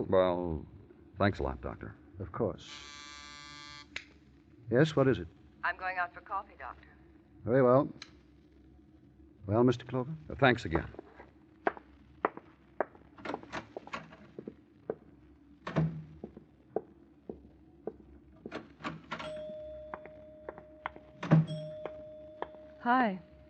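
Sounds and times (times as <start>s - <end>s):
speech: 0.0s - 3.1s, 4.7s - 8.1s, 9.5s - 11.1s, 23.0s - 23.3s
knocks and thumps: 10.8s - 15.0s, 15.6s - 19.2s
steady ringing elevator bell tone: 19.2s - 23.4s.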